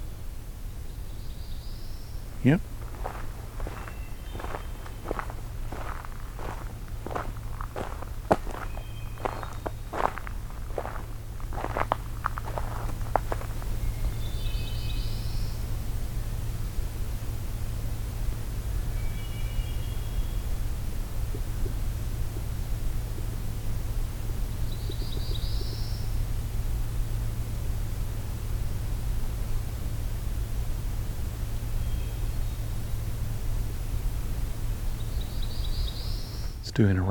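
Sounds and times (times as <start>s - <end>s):
low rumble: 0.0s - 37.0s
black-throated blue warbler song at Allegheny: 0.8s - 16.8s, 18.4s - 20.7s, 24.3s - 26.4s, 31.4s - 36.8s
speech: 2.4s - 2.7s, 36.8s - 37.0s.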